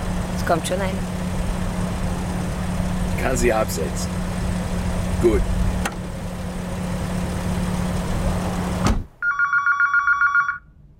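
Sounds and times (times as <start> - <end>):
car engine running: 0.0 - 9.2
speech: 0.5 - 1.2, 3.2 - 4.2, 5.2 - 5.6
telephone ringing in rapid bright electronic trills: 9.2 - 10.7.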